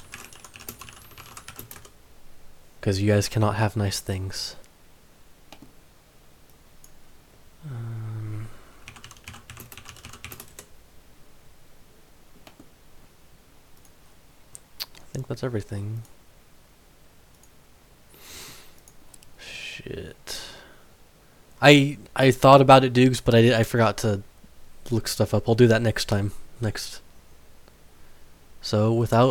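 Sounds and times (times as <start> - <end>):
typing on a computer keyboard: 0.0 - 1.9, 8.8 - 10.7
speech: 2.8 - 4.6, 15.4 - 16.2, 21.6 - 24.3, 24.9 - 27.0, 28.6 - 29.3.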